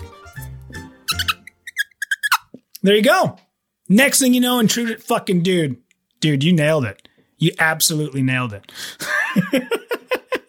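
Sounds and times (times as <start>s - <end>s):
voice imitating a squeaky fart: 1.1s - 2.6s
speech: 2.8s - 10.1s.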